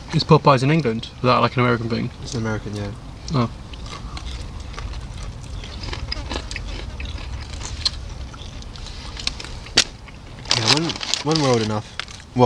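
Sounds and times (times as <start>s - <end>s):
low steady rumble: 0.0s - 12.4s
speech: 0.1s - 3.6s, 10.8s - 12.4s
crunching while biting and chewing crisp food: 2.2s - 12.3s.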